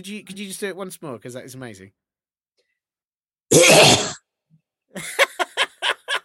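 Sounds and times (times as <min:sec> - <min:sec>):
speech: 0:00.0 - 0:02.0
person imitating a sheep coughing: 0:03.5 - 0:04.2
laughter: 0:05.0 - 0:06.2.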